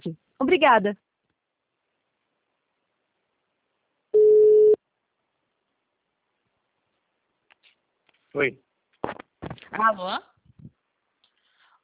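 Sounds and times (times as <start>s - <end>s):
speech: 0.0s - 1.1s, 8.4s - 8.6s, 9.4s - 10.3s
telephone busy signal beep: 4.2s - 4.8s.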